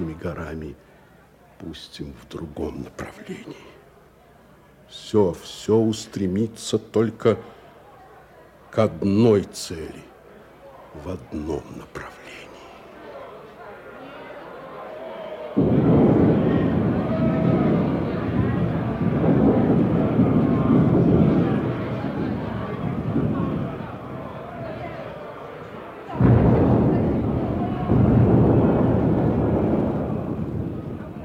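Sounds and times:
speech: 0:00.0 - 0:01.0, 0:01.6 - 0:03.8, 0:04.9 - 0:07.6, 0:08.7 - 0:10.1, 0:11.0 - 0:12.4
deep rolling thunder: 0:15.6 - 0:31.2.

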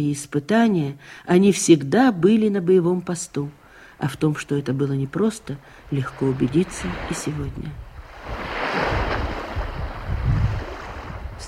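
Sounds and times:
speech: 0:00.0 - 0:08.4
lake waves lapping against the shore: 0:03.5 - 0:11.4
gusts of wind buffeting the microphone: 0:05.8 - 0:11.4.

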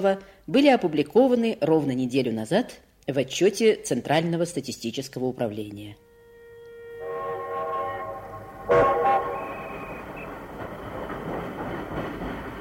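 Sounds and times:
speech: 0:00.0 - 0:06.0
diesel locomotive horn blast: 0:06.0 - 0:10.4
diesel locomotive train rolling away from the station: 0:07.0 - 0:12.5.

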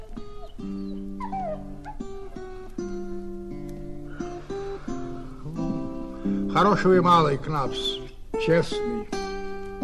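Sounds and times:
female dog whimpering and yipping: 0:01.2 - 0:02.0
speech: 0:06.5 - 0:09.1.

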